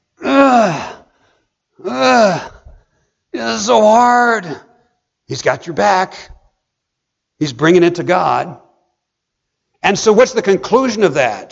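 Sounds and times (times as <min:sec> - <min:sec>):
person groaning: 0:00.2 - 0:01.0, 0:01.8 - 0:02.6
speech: 0:03.5 - 0:04.7, 0:05.3 - 0:06.4, 0:07.4 - 0:08.6, 0:09.8 - 0:11.4.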